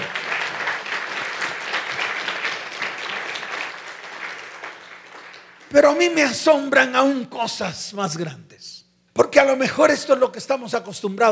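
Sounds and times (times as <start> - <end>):
audience applauding: 0.0 - 5.9
speech: 5.7 - 11.3.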